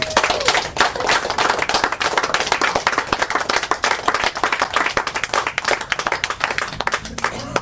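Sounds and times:
faint voice or cheer: 0.0 - 0.7
audience applauding after a reading: 0.0 - 7.6.

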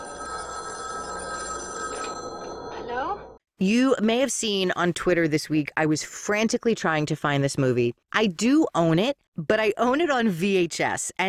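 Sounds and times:
telephone bell ringing: 0.0 - 3.4
speech: 3.6 - 11.2.

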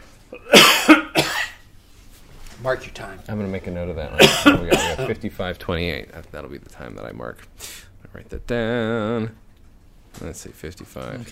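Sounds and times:
speech: 0.3 - 1.0, 2.6 - 9.4, 10.2 - 11.3
person coughing hoarsely: 0.3 - 1.6, 4.1 - 5.2.

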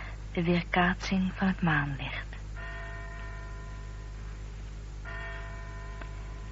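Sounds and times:
steady low hum: 0.0 - 6.5
speech: 0.4 - 2.2
tower clock bell tolling the hour above a house: 2.6 - 3.9, 5.1 - 6.5.

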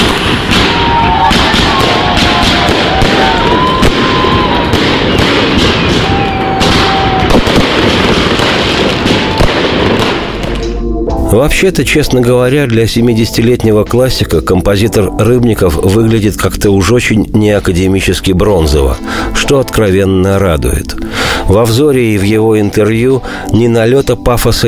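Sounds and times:
noisy crowd: 0.0 - 9.6
celebratory fireworks salute booming and crackling: 0.0 - 10.7
speech: 11.3 - 24.6.

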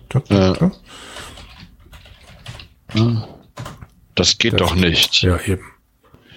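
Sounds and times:
speech: 0.1 - 1.4, 2.9 - 3.4, 4.2 - 5.7
keyboard typing: 1.0 - 4.0.

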